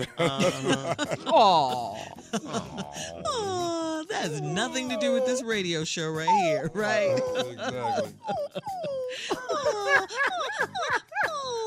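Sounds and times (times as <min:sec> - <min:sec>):
laughter: 0:00.0 - 0:05.4, 0:06.3 - 0:11.6
speech: 0:00.0 - 0:11.0
puppy squealing and whining: 0:03.2 - 0:10.4.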